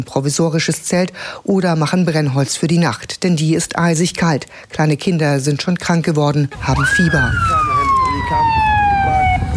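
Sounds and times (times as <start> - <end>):
speech: 0.0 - 9.2
low rumble of traffic: 0.0 - 9.5
outdoor noise: 0.0 - 9.5
ambulance siren wailing at a makeshift camp: 6.6 - 9.5.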